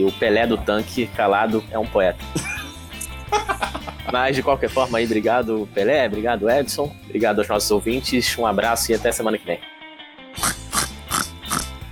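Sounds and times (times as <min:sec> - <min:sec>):
speech: 0:00.0 - 0:02.5, 0:03.3 - 0:09.7
laughter: 0:02.3 - 0:04.4
person imitating pig oinks: 0:10.4 - 0:11.8.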